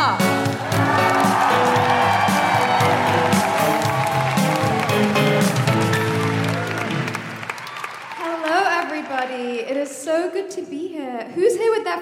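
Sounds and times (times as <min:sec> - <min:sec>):
applause from a large audience: 0:00.2 - 0:09.6
cheering and whoops: 0:00.6 - 0:08.4
speech: 0:09.8 - 0:12.0.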